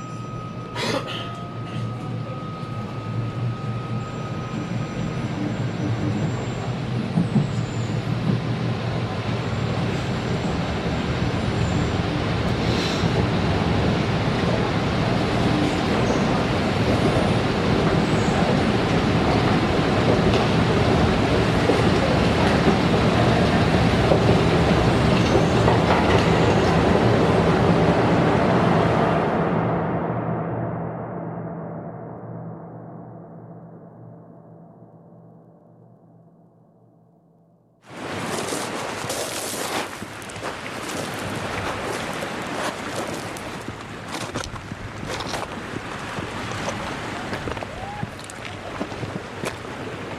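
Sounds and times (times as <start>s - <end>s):
thin high whine: 0.0s - 6.6s
train running on rails: 0.0s - 30.2s, 37.8s - 50.1s.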